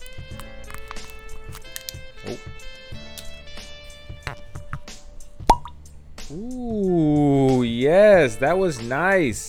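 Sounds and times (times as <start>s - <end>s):
cork popping out of a bourbon bottle: 0.0s - 6.6s
soft music with light rhythmic taps: 0.0s - 9.4s
speech: 7.9s - 9.4s.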